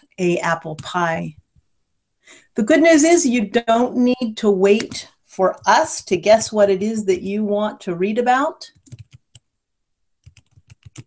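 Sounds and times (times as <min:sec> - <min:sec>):
speech: 0:00.2 - 0:01.4, 0:02.3 - 0:09.0
keys clacking on a computer keyboard as a search term is typed: 0:08.7 - 0:09.4, 0:10.2 - 0:11.0.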